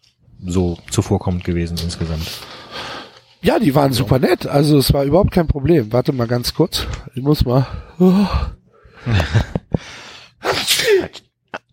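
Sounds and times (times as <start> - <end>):
speech: 0.4 - 2.8, 3.4 - 9.5
laughter: 8.9 - 9.9
person sneezing: 10.4 - 11.3.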